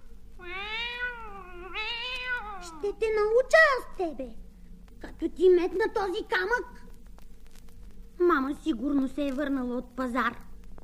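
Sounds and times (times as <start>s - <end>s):
cat meowing: 0.4s - 2.8s
speech: 2.8s - 4.4s, 5.1s - 6.8s, 8.2s - 10.4s.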